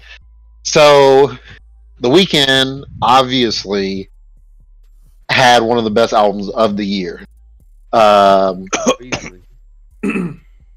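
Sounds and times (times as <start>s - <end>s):
speech: 0.7s - 4.1s, 5.3s - 7.3s, 7.9s - 9.4s, 10.0s - 10.4s
person clearing their throat: 8.6s - 9.4s, 10.0s - 10.4s
person coughing: 8.6s - 9.4s, 10.0s - 10.4s.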